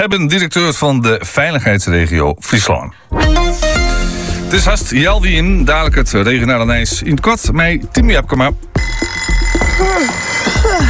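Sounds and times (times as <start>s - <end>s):
speech: 0.0s - 3.6s, 4.5s - 9.3s
electronic alarm clock chirping: 8.7s - 10.8s.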